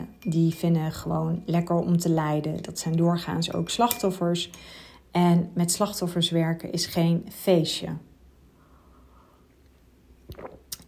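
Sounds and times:
low room hiss: 0:00.0 - 0:10.8
speech: 0:00.2 - 0:08.1
person sipping matcha tea: 0:10.3 - 0:10.8.

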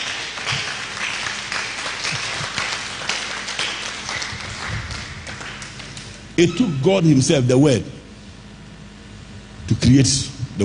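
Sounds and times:
crowd clapping: 0:00.0 - 0:06.2
speech: 0:06.4 - 0:08.0, 0:09.9 - 0:10.6.

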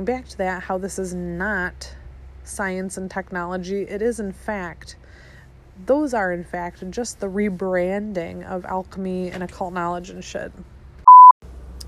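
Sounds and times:
speech: 0:00.0 - 0:05.2, 0:05.8 - 0:10.7
short steady-pitched phone notification beep: 0:11.1 - 0:11.3.

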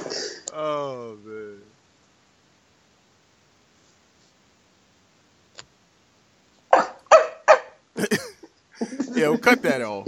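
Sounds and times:
person's voice barking like a small chihuahua: 0:06.7 - 0:07.8
laughter: 0:08.0 - 0:10.0
speech: 0:09.2 - 0:10.0.

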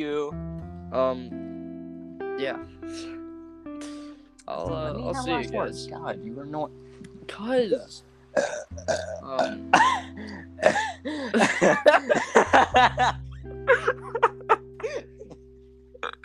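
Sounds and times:
speech: 0:00.0 - 0:01.5, 0:02.4 - 0:03.2, 0:03.8 - 0:10.0, 0:10.6 - 0:14.2
rapid flurry of loud burps: 0:08.4 - 0:10.9, 0:16.0 - 0:16.2
snickers and light laughter: 0:09.3 - 0:15.0.

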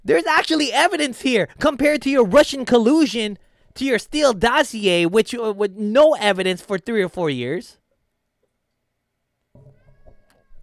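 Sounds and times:
speech: 0:00.1 - 0:07.8
cat meowing with a drawn-out wavering cry: 0:09.6 - 0:10.6.

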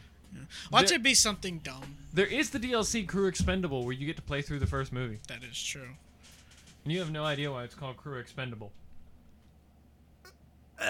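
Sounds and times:
speech: 0:00.5 - 0:06.1, 0:06.8 - 0:08.8
person attempting a throaty burp: 0:10.3 - 0:10.8.

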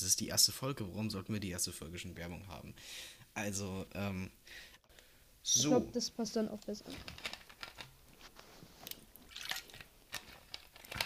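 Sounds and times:
speech: 0:00.0 - 0:04.7, 0:05.4 - 0:07.4
person taking a small sip of water: 0:08.8 - 0:09.8.

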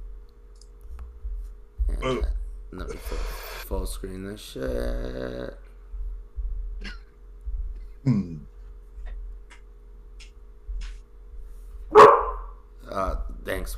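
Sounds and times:
steady low hum: 0:00.0 - 0:13.7
speech: 0:02.0 - 0:05.6, 0:08.0 - 0:08.5
dog barking: 0:11.9 - 0:12.6.

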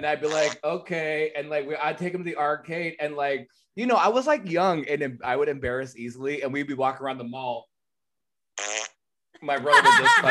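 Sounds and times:
speech: 0:00.0 - 0:07.7, 0:08.6 - 0:10.2
animated voice: 0:00.2 - 0:00.6
person blowing a raspberry imitating a fart: 0:08.6 - 0:09.0
laughter: 0:09.4 - 0:10.2.

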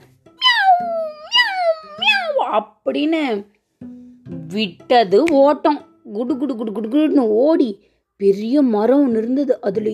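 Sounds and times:
narrator imitating a cat meowing: 0:00.4 - 0:02.5
speech: 0:02.5 - 0:03.6, 0:04.5 - 0:09.9.

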